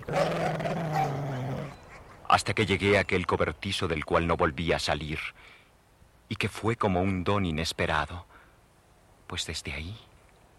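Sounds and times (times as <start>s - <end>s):
dog growling: 0.0s - 1.8s
speech: 2.3s - 5.6s, 6.3s - 8.3s, 9.3s - 10.1s.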